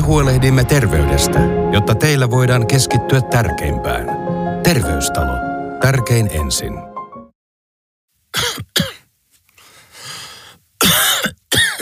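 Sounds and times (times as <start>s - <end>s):
speech: 0.1s - 6.9s
harsh coughs: 8.4s - 9.0s, 10.8s - 11.8s.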